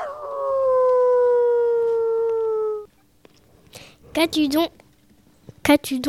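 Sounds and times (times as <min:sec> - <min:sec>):
hunting dog howling: 0:00.0 - 0:02.9
speech: 0:04.2 - 0:04.8, 0:05.6 - 0:06.0.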